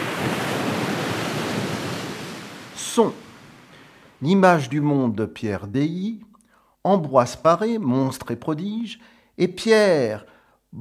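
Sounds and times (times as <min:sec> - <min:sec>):
ocean surf washing and breaking: 0:00.0 - 0:04.7
speech: 0:03.0 - 0:03.3, 0:04.2 - 0:10.8.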